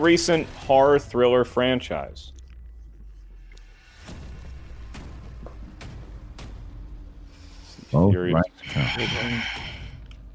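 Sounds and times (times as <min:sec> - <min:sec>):
speech: 0:00.0 - 0:02.4, 0:07.9 - 0:09.7
heavy breathing with sighing groan: 0:07.3 - 0:10.1.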